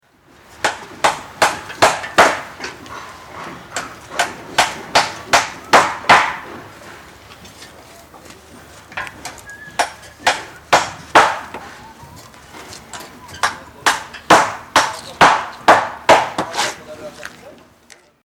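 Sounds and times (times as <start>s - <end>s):
construction site rhythms: 0.1s - 17.9s.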